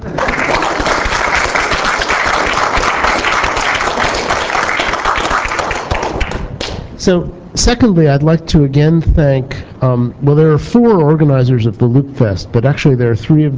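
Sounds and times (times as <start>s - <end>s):
audience applause: 0.0s - 6.7s
speech: 7.1s - 13.5s.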